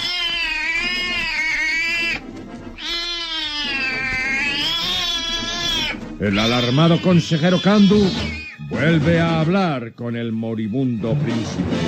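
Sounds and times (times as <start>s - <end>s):
enormous Persian cat yowling as it attacks with its claws: 0.0s - 2.2s, 2.8s - 8.7s
speech: 6.2s - 11.8s.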